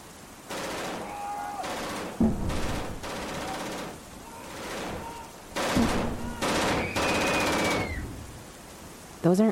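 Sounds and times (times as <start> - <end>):
automatic gunfire: 0.5 - 7.8.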